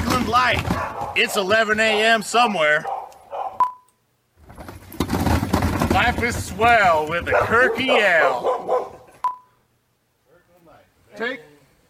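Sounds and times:
speech: 0.3s - 3.0s, 6.0s - 8.9s, 11.2s - 11.5s
dog barking: 0.7s - 2.2s, 2.8s - 3.7s, 7.3s - 9.1s
short electronic beep: 3.6s - 4.0s.

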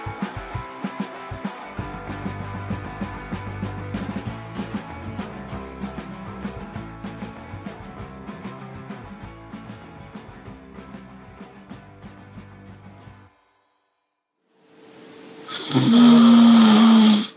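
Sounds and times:
music: 0.0s - 17.3s
person snoring: 15.5s - 17.3s.

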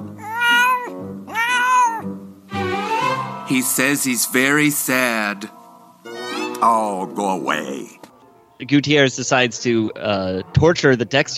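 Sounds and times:
cat meowing: 0.2s - 2.1s
speech: 3.5s - 5.6s, 6.6s - 8.0s, 8.6s - 11.3s.

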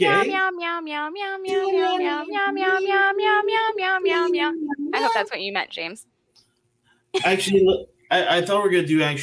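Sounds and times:
human voices singing a jingle in meow syllables imitating a cat: 0.0s - 5.3s
speech: 0.0s - 6.2s, 7.1s - 9.2s.

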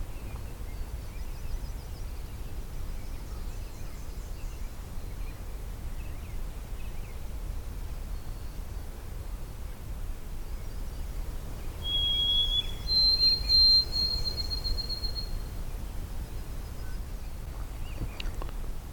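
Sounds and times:
outdoor wind: 0.0s - 18.9s
white-throated sparrow singing: 11.7s - 15.5s.

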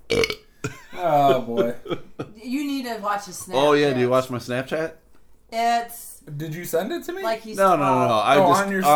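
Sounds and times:
person belching: 0.0s - 1.1s
speech: 0.1s - 2.0s, 2.9s - 8.9s
laughter: 0.7s - 2.5s.

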